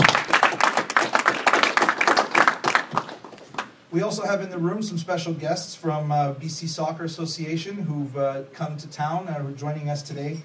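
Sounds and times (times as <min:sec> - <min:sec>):
audience applause: 0:00.0 - 0:03.7
speech: 0:03.9 - 0:10.4.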